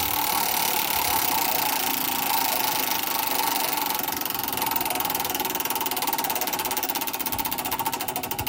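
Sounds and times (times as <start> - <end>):
dense rapid clatter of ticks from a spinning prize wheel: 0.0 - 8.4
large prize wheel pulled and spinning: 0.0 - 8.4.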